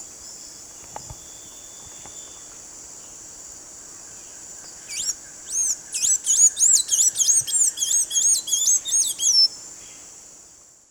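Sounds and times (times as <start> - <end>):
Blue-gray Tanager Thraupis episcopus song: 4.9 - 9.5.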